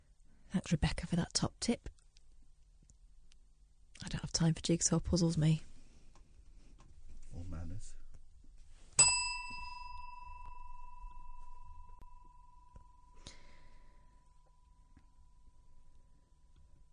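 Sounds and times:
speech: 0.5 - 2.0, 4.0 - 5.7
bright handbell struck to cut a speaker off: 9.0 - 13.1.

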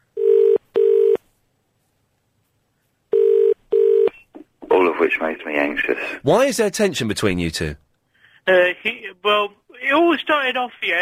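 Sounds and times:
telephone dialing tones: 0.2 - 1.2, 3.1 - 4.1
speech: 5.0 - 7.8, 8.4 - 11.0.

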